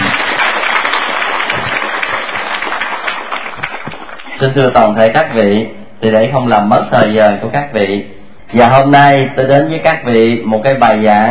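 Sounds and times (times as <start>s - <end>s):
Buddhist audience applause welcoming a nun: 0.0s - 4.4s
speech: 4.4s - 11.3s.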